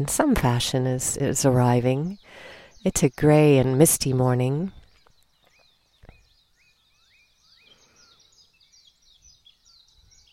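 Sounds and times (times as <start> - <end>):
speech: 0.0 - 4.8
birds singing and chirping at daybreak in a misty Pacific island rainforest: 0.0 - 10.3.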